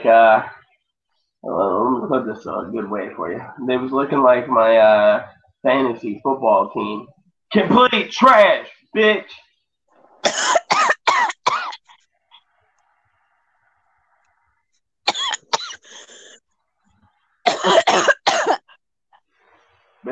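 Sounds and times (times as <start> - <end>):
speech: 0.0 - 0.6, 1.4 - 9.4, 10.2 - 10.6
harsh repeated coughing: 10.2 - 12.0, 15.1 - 16.2, 17.4 - 18.8.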